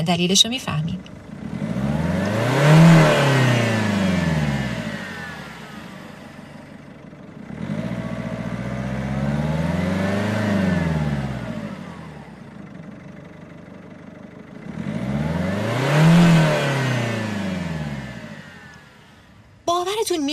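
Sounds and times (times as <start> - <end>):
speech: 0.0 - 1.2
car engine revving up and down: 0.0 - 19.6.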